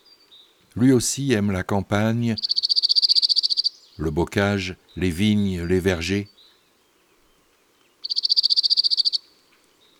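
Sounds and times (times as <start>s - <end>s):
speech: 0.8s - 2.7s, 4.0s - 6.4s
cirl bunting singing a rapid buzzy trill: 2.4s - 4.0s, 8.0s - 9.3s.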